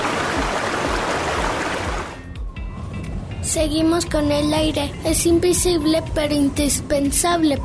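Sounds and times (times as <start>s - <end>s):
stream water rushing and splashing: 0.0s - 2.2s
speech: 3.5s - 7.6s.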